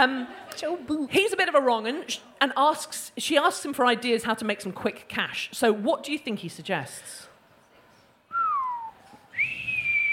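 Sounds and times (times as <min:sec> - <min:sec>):
speech: 0:00.0 - 0:07.3
person whistling: 0:08.3 - 0:10.1.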